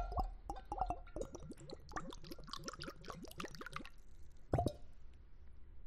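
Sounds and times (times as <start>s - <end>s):
tequila glugging and splashing as a shot is poured: 0.0s - 4.8s.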